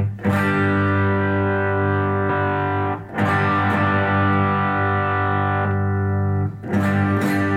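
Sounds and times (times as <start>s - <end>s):
electric guitar through overdrive pedal playing thick distorted chords: 0.0s - 7.5s.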